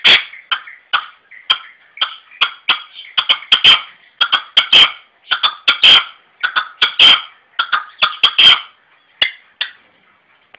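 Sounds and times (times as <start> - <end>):
red-legged partridge giving harsh scratchy call notes and chuffs: 0.0 - 9.8.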